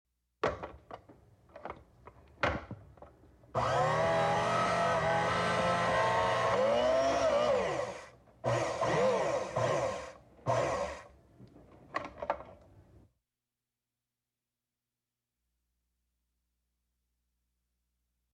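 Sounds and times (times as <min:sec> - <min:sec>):
electric can opener: 0:03.6 - 0:11.1.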